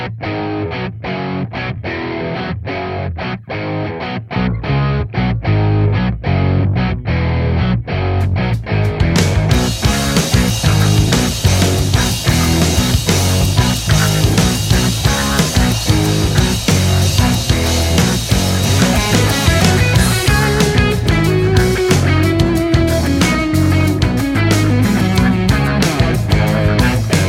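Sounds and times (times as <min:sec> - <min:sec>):
driving electric guitar in instrumental rock track: 0:00.0 - 0:27.2
steady drums: 0:08.0 - 0:27.2.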